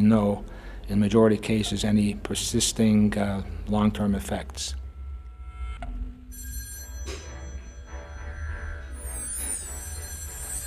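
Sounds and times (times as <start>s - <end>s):
speech: 0.0s - 4.8s
telephone bell ringing: 6.3s - 10.6s.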